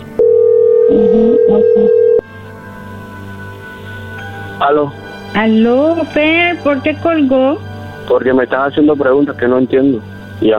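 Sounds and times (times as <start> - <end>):
incoming telephone call electronic tone: 0.1 - 2.2
speech: 0.9 - 2.1, 4.6 - 10.5.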